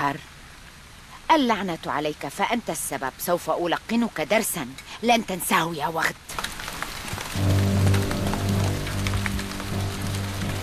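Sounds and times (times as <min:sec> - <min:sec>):
speech: 0:00.0 - 0:00.4, 0:01.3 - 0:06.3
heavy rain pouring: 0:00.0 - 0:10.6.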